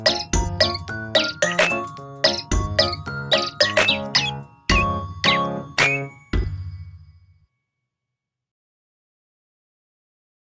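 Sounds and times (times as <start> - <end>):
canaries chirping: 0.0 - 6.1
jingly tune with deep bass notes: 0.0 - 7.4.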